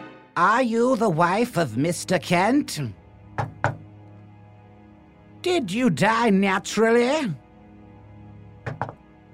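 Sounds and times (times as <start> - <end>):
speech: 0.4 - 3.0, 5.5 - 7.4
knocks in answer to a question: 3.4 - 3.9, 8.6 - 9.0.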